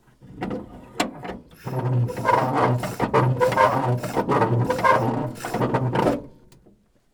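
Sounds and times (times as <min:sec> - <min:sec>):
compressor: 0:01.6 - 0:06.5
hand crank turning: 0:02.0 - 0:06.2.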